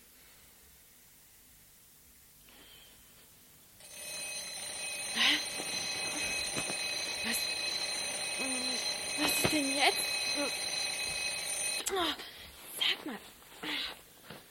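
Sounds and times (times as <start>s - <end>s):
alarm clock ringing with a shrill electronic tone: 3.8s - 11.8s.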